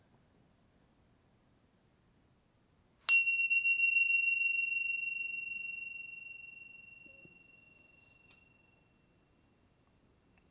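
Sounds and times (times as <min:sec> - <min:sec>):
single bell struck during a guided relaxation session: 0:03.1 - 0:09.1.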